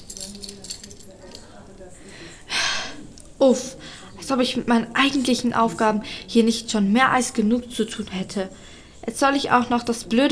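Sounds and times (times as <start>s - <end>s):
keys to a luxury suite jingling as they are handed over: 0.0s - 1.7s
speech: 3.4s - 10.2s.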